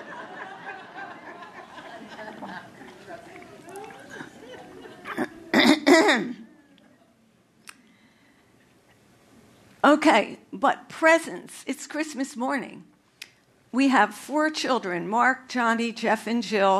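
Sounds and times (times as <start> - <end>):
laughter: 0.0 - 5.7
low murmured talk: 1.1 - 5.6, 6.4 - 7.5
person coughing: 4.1 - 6.5
speech: 6.0 - 6.4, 9.9 - 12.9, 13.7 - 16.7.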